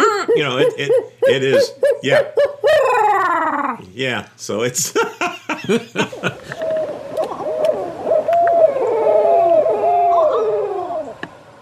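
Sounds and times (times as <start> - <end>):
group of barred owls caterwauling with hoots, cackles and wails: 0.0 - 3.8, 6.2 - 11.2
speech: 0.4 - 2.5, 3.8 - 6.5
laughter: 4.8 - 6.7.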